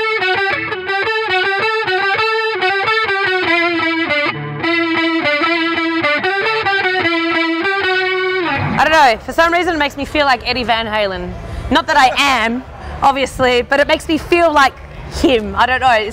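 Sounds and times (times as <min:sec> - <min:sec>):
electric guitar through super overdrive and chorus clone pedals playing a chugging riff: 0:00.0 - 0:09.3
speech: 0:09.1 - 0:16.1.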